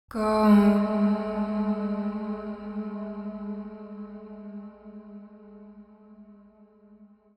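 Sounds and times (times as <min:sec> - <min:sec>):
vocals in A minor: 0:00.0 - 0:05.8.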